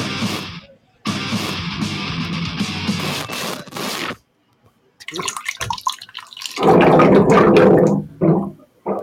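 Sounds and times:
water running from a tap: 5.1 - 8.0.

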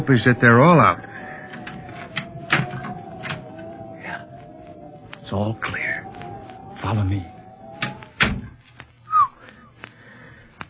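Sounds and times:
speech: 0.0 - 1.1, 5.3 - 5.9, 6.8 - 7.3
soft tonal rub: 0.0 - 8.2
oiled door opening quietly without squeaking: 0.0 - 8.6.

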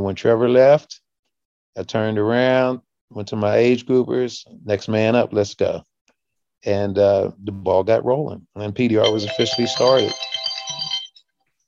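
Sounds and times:
speech: 0.0 - 1.0, 1.8 - 5.9, 6.6 - 10.9
electronic phone ringtone: 9.0 - 11.4.

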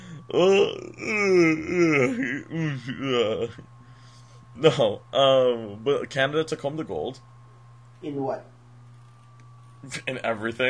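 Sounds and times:
drawn-out groaning yawn: 0.0 - 3.7
speech: 0.3 - 3.8, 4.6 - 7.3, 8.0 - 8.5, 9.8 - 10.6.

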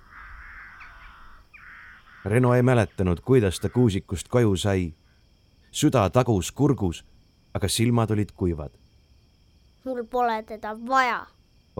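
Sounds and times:
crows cawing as they take flight from spruce treetops: 0.0 - 4.0
speech: 2.2 - 5.0, 5.7 - 8.8, 9.8 - 11.7.

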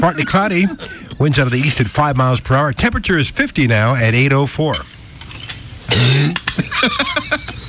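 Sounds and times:
laughter: 0.0 - 1.0, 6.4 - 7.6
person coughing from a tickle in the throat: 0.0 - 1.2, 5.9 - 6.5
speech: 0.0 - 5.0, 6.0 - 7.4.

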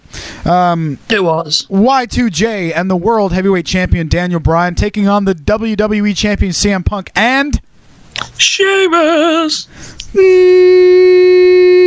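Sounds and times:
speech: 0.5 - 11.8
voice imitating white noise: 8.2 - 11.8.

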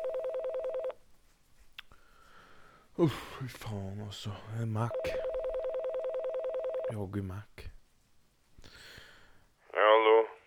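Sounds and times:
telephone ringing tone warbling: 0.0 - 1.0, 4.9 - 7.0
speech: 3.0 - 5.2, 6.9 - 7.7.

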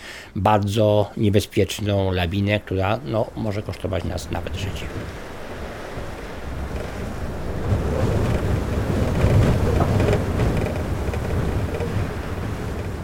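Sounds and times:
speech: 0.4 - 5.2
wind blowing: 0.9 - 13.0.

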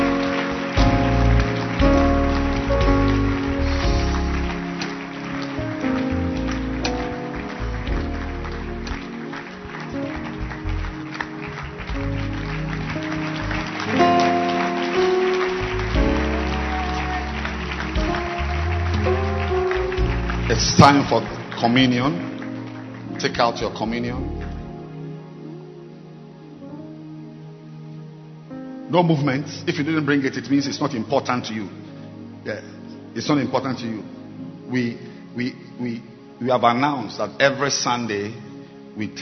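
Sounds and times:
crowd clapping: 0.0 - 24.7
loud music with sustained tones: 0.0 - 39.1
speech: 20.8 - 22.3, 23.2 - 24.4, 28.9 - 34.1, 34.7 - 38.4, 39.0 - 39.1.

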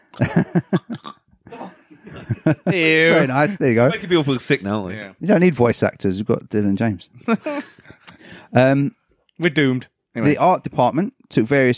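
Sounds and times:
person making guttural throat clicks imitating a creature: 0.0 - 1.8
speech: 0.2 - 1.0, 2.5 - 7.8, 8.5 - 11.7
laughter: 0.2 - 4.6, 7.2 - 8.0.

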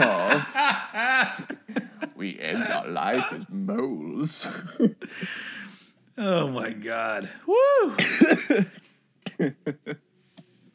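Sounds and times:
person coughing: 0.0 - 1.3, 2.4 - 3.5, 8.0 - 10.0
laughter: 0.0 - 5.3, 8.0 - 10.0
speech: 2.3 - 5.5, 6.2 - 8.8.

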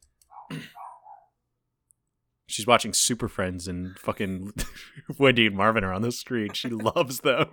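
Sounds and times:
dog barking at the TV: 0.3 - 1.4
speech: 2.6 - 7.5
laughter: 4.1 - 7.5.

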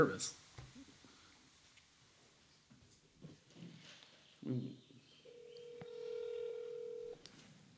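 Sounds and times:
speech: 0.0 - 0.4, 4.4 - 4.8
faint noise: 0.0 - 7.7
phone dialing beeps while placing a call: 5.3 - 7.2.

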